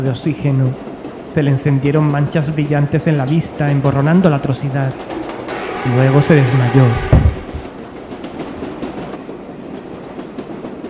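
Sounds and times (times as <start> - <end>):
speech: 0.0 - 7.3
subway train wheels clattering on rails arriving at a station: 0.0 - 10.8.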